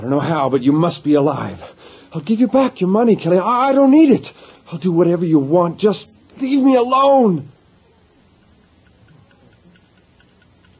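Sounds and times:
speech: 0.0 - 7.5
dense hiss of noise: 0.0 - 10.7
watch ticking: 8.3 - 10.7.

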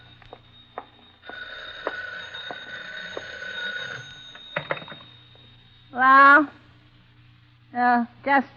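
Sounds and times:
old-fashioned telephone bell ringing in a room: 0.0 - 6.8
speech: 6.0 - 6.6, 7.8 - 8.5.

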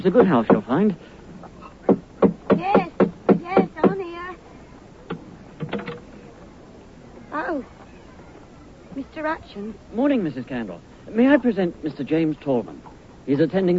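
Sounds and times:
speech: 0.0 - 1.1, 7.4 - 7.8, 9.0 - 13.7
firm knocking on a door: 1.9 - 4.0.

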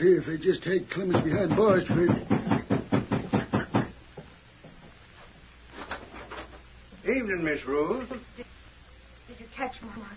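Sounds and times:
speech: 0.0 - 2.6, 7.2 - 8.5, 9.6 - 10.1
sheriff knocking on a wooden door: 1.0 - 5.0.

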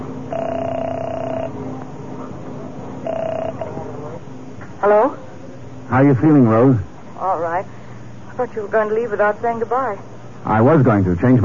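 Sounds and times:
low hum: 0.0 - 11.4
telephone line electronic beeps: 0.3 - 1.6, 3.0 - 3.7
speech: 6.0 - 7.8, 8.4 - 11.4.

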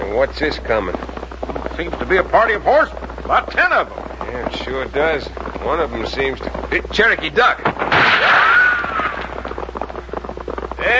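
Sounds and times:
faint scattered crackles: 0.0 - 10.9
speech: 0.1 - 8.5
gunshot with ricochet whine in a Western shootout: 7.8 - 8.6.

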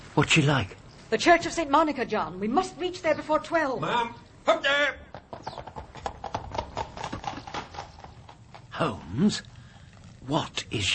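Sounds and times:
speech: 0.2 - 5.6, 8.8 - 9.5, 10.3 - 10.9
hooves of a horse pulling a landau carriage clip-clopping: 4.8 - 10.3.

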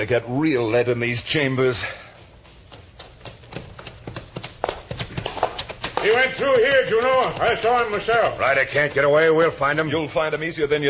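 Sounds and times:
speech: 0.0 - 2.0, 6.0 - 10.8
horse hooves galloping: 2.3 - 10.3.

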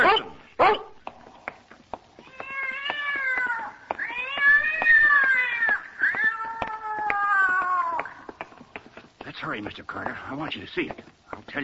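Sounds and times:
big cat on packing boxes yowling: 2.2 - 8.2
speech: 9.6 - 11.6.

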